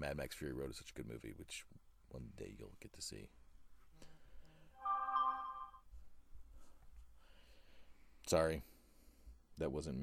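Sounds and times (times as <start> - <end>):
speech: 0.0 - 3.4, 8.3 - 8.7, 9.6 - 10.0
phone ringtone: 4.8 - 5.8.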